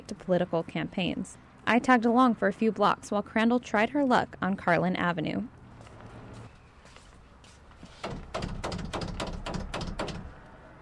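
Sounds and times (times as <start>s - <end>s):
speech: 0.1s - 5.6s
knuckles knocking on a house's front door: 8.0s - 10.3s.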